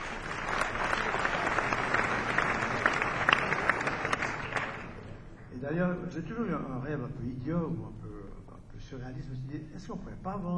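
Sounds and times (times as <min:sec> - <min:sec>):
festival concert crowd applauding: 0:00.0 - 0:05.4
speech: 0:05.7 - 0:08.0, 0:08.9 - 0:10.5.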